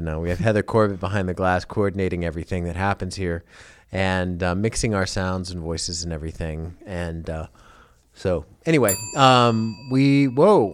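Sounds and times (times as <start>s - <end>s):
speech: 0.0s - 7.6s, 8.2s - 10.7s
email notification bell ringing in a studio: 8.9s - 10.7s.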